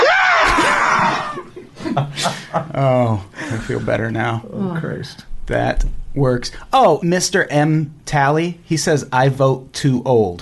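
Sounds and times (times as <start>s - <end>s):
person imitating an exaggerated rally victory scream: 0.0s - 1.5s
laughter: 0.4s - 4.0s
speech: 2.5s - 10.4s.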